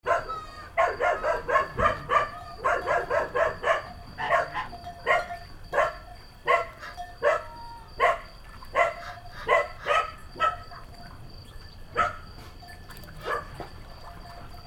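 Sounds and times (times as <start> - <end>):
goatherd's dog barking: 0.0 - 10.8, 11.9 - 12.3, 13.2 - 13.7.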